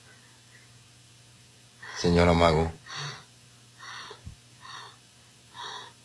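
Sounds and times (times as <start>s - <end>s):
speech: 2.0s - 3.0s
woman breathing rapidly and heavily: 2.8s - 6.0s.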